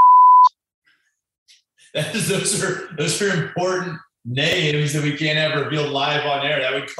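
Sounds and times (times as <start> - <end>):
high-pitched censor bleep: 0.0 - 0.6
speech: 2.0 - 6.9
spoken words: 2.0 - 6.9.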